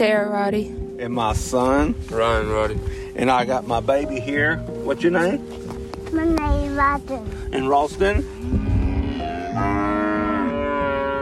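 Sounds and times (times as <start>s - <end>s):
speech: 0.0s - 8.4s
cow mooing: 8.3s - 11.2s.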